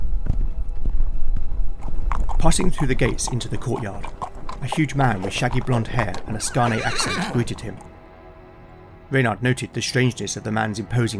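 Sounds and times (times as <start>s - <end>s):
horse hooves clip-clopping: 0.0s - 7.9s
speech: 2.4s - 7.9s, 9.1s - 11.1s.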